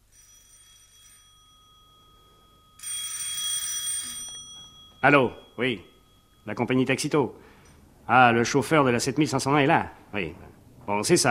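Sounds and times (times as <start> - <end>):
old-style telephone bell ringing: 0.0 - 6.6
speech: 5.0 - 7.5, 8.1 - 11.2.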